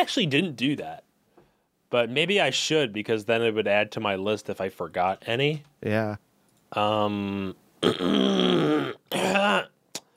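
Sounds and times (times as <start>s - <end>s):
speech: 0.0s - 1.1s, 1.9s - 9.7s
person clearing throat: 7.8s - 9.8s.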